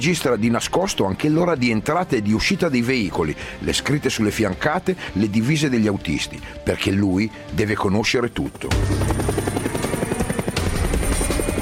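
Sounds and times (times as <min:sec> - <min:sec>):
speech: 0:00.0 - 0:09.2
helicopter engine drone on a sightseeing ride: 0:07.3 - 0:11.5
helicopter rotor thumping on a sightseeing ride: 0:08.5 - 0:11.5.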